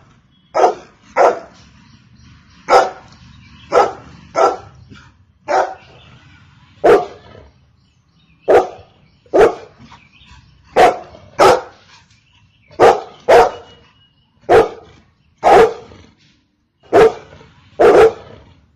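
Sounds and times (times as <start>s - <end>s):
golden retriever barking: 0.6s - 1.5s, 2.7s - 3.1s, 3.7s - 4.7s, 5.5s - 5.9s, 6.8s - 7.2s, 8.5s - 9.7s, 10.8s - 11.8s, 12.8s - 13.7s, 14.5s - 15.9s, 16.9s - 18.3s.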